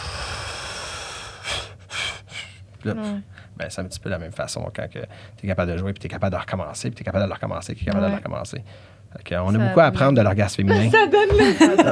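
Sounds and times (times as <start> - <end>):
long forceful exhale in tantric breathing practice: 0.0 - 2.6
short breathy puffs of air in tantric breathing practice: 0.0 - 2.7
speech: 2.8 - 11.8
laughter: 10.7 - 11.8.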